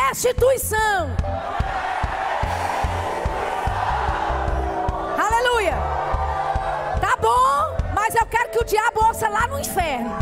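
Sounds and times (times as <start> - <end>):
speech: 0.2 - 1.8, 8.2 - 10.1
large audience shouting in unison: 1.4 - 7.2.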